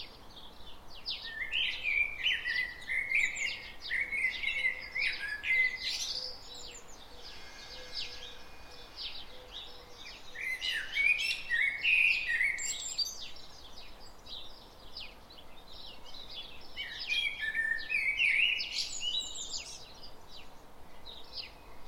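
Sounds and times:
common blackbird Turdus merula singing mellow warbled phrases: 0:00.0 - 0:21.8
thin high chirps from other birds: 0:00.0 - 0:21.8.

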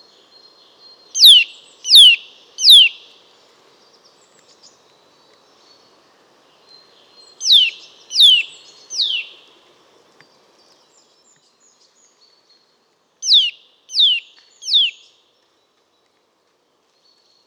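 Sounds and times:
Eurasian nuthatch Sitta europaea call: 0:01.2 - 0:03.0, 0:07.4 - 0:09.3, 0:13.2 - 0:15.0.

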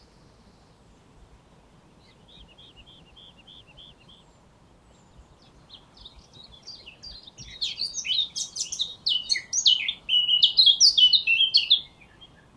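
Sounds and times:
faint background noise: 0:00.0 - 0:12.5
Eurasian blackcap Sylvia atricapilla song: 0:02.0 - 0:12.5.

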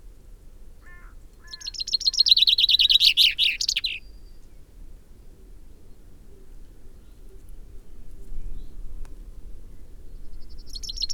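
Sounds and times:
Common Chaffinch Fringilla coelebs song phrase: 0:01.4 - 0:04.6, 0:10.4 - 0:11.1.

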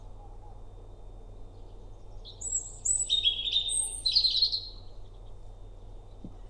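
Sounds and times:
European robin Erithacus rubecula singing: 0:02.2 - 0:04.7.

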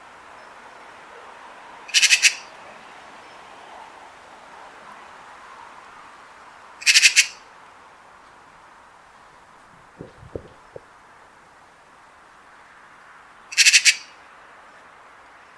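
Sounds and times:
Eurasian magpie Pica pica giving harsh rattling chatter calls: 0:01.9 - 0:02.5, 0:06.8 - 0:07.4, 0:13.5 - 0:14.2.

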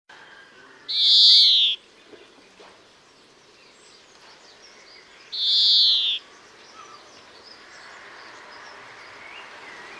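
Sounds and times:
speech: 0:00.9 - 0:01.4
Chloris chloris buzzy wheezing calls: 0:00.9 - 0:01.8, 0:05.4 - 0:07.1.

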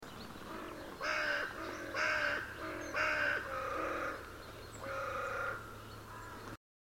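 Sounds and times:
Carrion crow (Corvus corone) giving harsh, hoarse caws: 0:00.5 - 0:04.2, 0:04.8 - 0:06.4.

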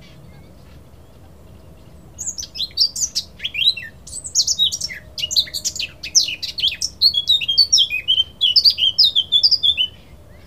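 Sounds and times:
Eurasian blackcap Sylvia atricapilla warbling: 0:02.1 - 0:10.4.

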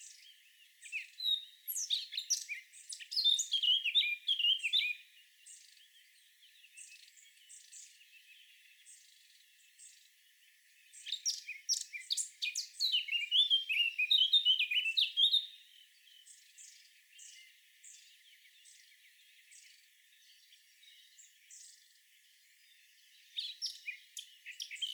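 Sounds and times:
Eurasian blackcap Sylvia atricapilla singing a fast varied warble: 0:00.0 - 0:05.0, 0:11.0 - 0:16.2, 0:23.2 - 0:24.9.

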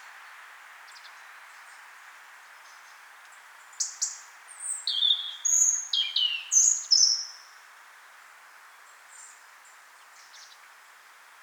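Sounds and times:
European robin Erithacus rubecula singing: 0:03.8 - 0:07.3.

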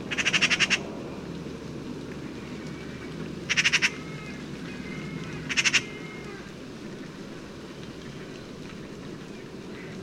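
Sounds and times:
Eurasian magpie (Pica pica) rattle calls: 0:00.1 - 0:00.8, 0:03.5 - 0:04.3, 0:05.5 - 0:05.9.

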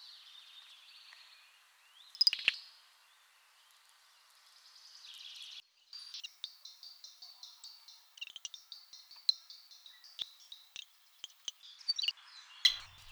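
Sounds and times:
songbird singing high repeated notes, chirps and sharp ticks: 0:06.0 - 0:13.0
brief rustle: 0:12.7 - 0:13.0.

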